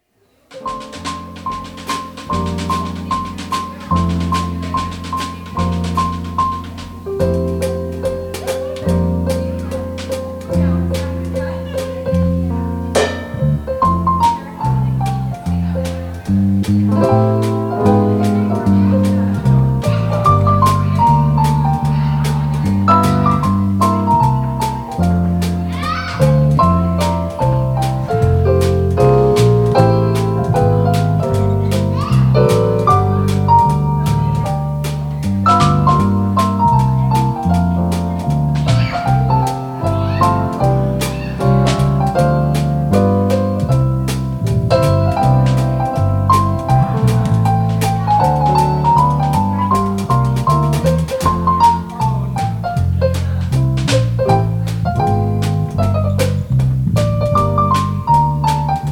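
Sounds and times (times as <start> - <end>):
jazz band playing: 0.5 - 58.9.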